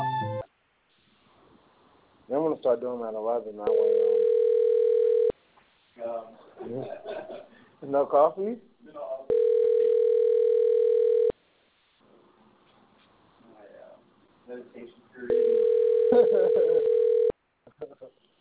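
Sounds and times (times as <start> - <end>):
speech: 2.6 - 4.2, 6.0 - 9.0, 14.5 - 16.6
telephone ringback tone: 3.7 - 5.3, 9.3 - 11.3, 15.3 - 17.3
laughter: 6.4 - 7.6, 16.1 - 16.9.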